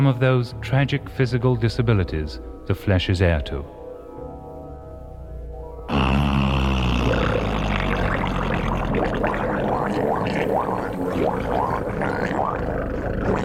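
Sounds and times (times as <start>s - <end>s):
speech: 0.0s - 3.8s
humpback whale song underwater: 5.9s - 13.4s.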